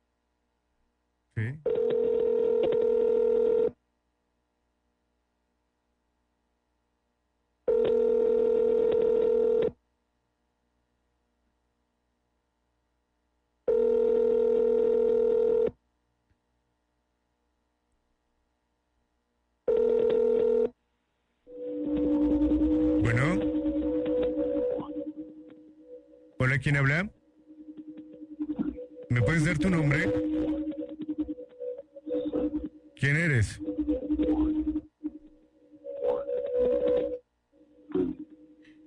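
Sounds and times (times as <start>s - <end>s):
speech: 1.4s - 1.7s, 26.6s - 27.2s, 29.2s - 30.2s, 33.0s - 33.6s
telephone ringback tones from an internet phone service: 1.7s - 3.7s, 7.7s - 9.6s, 13.7s - 15.7s, 19.7s - 20.7s, 21.5s - 31.4s
wavering warbling telephone line tone: 21.5s - 38.4s.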